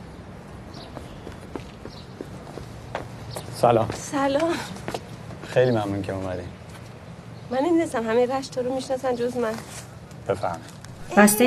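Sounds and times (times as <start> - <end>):
footsteps going down stairs in a park: 0.8 - 5.5
speech: 3.6 - 4.8, 5.5 - 6.6, 7.5 - 11.4.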